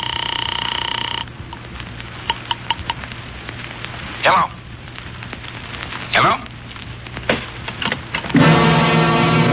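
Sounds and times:
telephone ringing with a trilling buzz: 0.0 - 1.3
faint hiss: 1.2 - 9.4.

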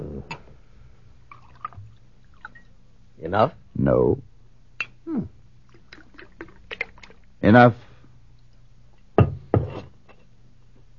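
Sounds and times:
liquid pouring into a cup: 1.3 - 2.6, 5.7 - 7.3
speech: 3.2 - 4.3, 5.1 - 5.4, 7.4 - 7.8.

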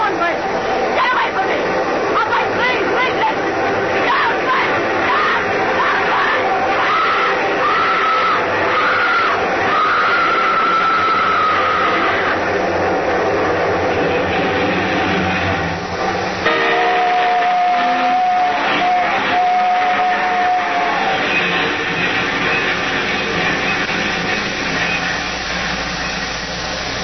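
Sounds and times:
long loud train rumbling past: 0.0 - 27.0
sustained high horn-like tone: 16.4 - 21.1.

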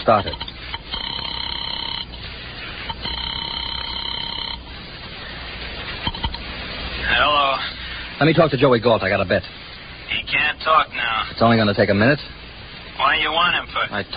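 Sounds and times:
speech: 0.0 - 0.5, 8.2 - 9.6, 10.3 - 12.4, 13.0 - 14.1
telephone ringing with buzzing bursts: 0.0 - 4.8
sharp clicks as the telephone line picks up: 0.1 - 2.2, 2.8 - 4.7.

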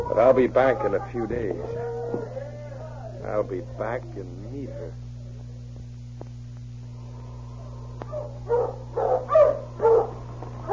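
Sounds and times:
steady low electrical hum: 0.0 - 10.7
speech: 0.1 - 2.4, 3.2 - 5.1
sled dog team barking and yelping while driven on a road: 8.1 - 10.7.

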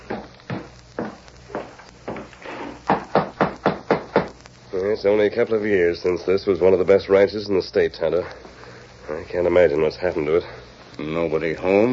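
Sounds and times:
knocking on the wooden door of a ranch house: 2.9 - 4.3
speech: 4.8 - 11.9.

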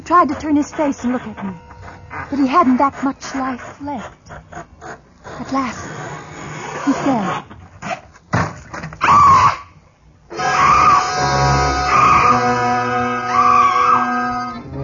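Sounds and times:
speech: 0.1 - 4.8, 5.4 - 6.0, 6.8 - 7.6
woman screaming: 10.4 - 14.5.

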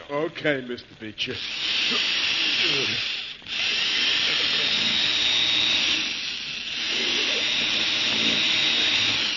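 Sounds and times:
speech: 0.1 - 3.2
drill grinding into hard material of a vault: 1.2 - 9.3.

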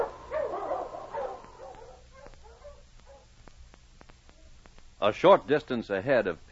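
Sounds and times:
team of sled dogs pulling a sled around a mountain barking and yipping: 0.0 - 3.3
speech: 5.0 - 6.5.

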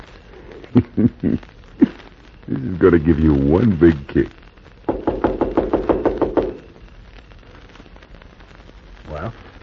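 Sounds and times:
speech: 0.7 - 1.6, 2.6 - 4.4
firm knocks on a wooden door: 4.9 - 6.6.

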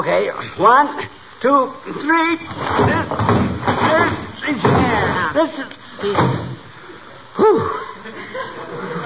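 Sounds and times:
speech: 0.0 - 6.6, 7.4 - 9.0
heavy old trunk thudding as it is set down: 2.5 - 5.2, 6.1 - 6.6
people grunting and straining with effort: 7.4 - 8.2
laughter: 7.4 - 9.0.

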